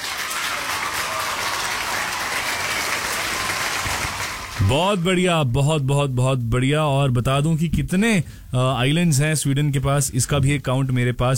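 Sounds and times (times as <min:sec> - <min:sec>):
large crowd applauding: 0:00.0 - 0:05.0
speech: 0:04.6 - 0:11.3.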